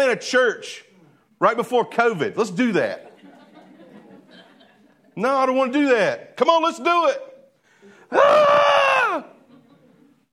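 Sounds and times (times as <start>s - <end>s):
speech: 0.1s - 0.8s, 1.4s - 3.1s, 5.2s - 7.3s, 8.1s - 9.4s
laughter: 2.9s - 5.2s, 9.1s - 10.3s
single sustained human scream: 8.1s - 9.4s.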